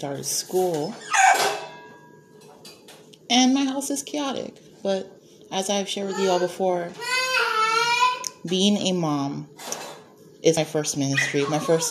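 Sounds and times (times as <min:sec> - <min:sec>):
speech: 0:00.0 - 0:01.6, 0:03.3 - 0:07.1, 0:08.4 - 0:09.6, 0:10.4 - 0:11.8
puppy barking: 0:01.1 - 0:01.5.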